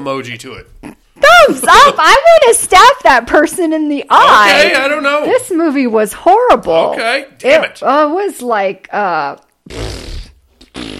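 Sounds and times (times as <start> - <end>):
speech: 0.0 - 10.0
loud buzzy fart sounds: 9.6 - 10.9.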